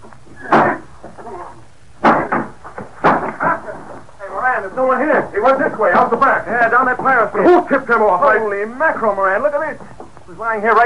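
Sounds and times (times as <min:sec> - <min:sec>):
door being broken down with heavy booming crashes: 0:02.0 - 0:04.0
speech: 0:04.6 - 0:10.8.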